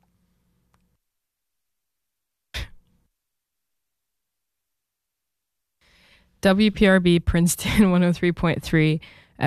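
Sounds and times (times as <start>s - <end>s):
person coughing: 2.6s - 2.8s
speech: 6.4s - 9.4s.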